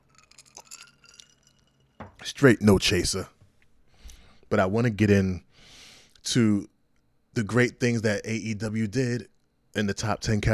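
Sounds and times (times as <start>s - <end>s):
whiskey glass clinking: 0.0s - 2.2s
speech: 2.2s - 3.4s, 4.5s - 5.5s, 6.2s - 6.7s, 7.4s - 10.5s.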